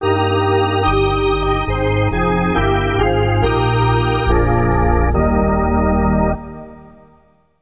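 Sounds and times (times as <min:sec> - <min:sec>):
hockey organ playing a national anthem: 0:00.0 - 0:07.1.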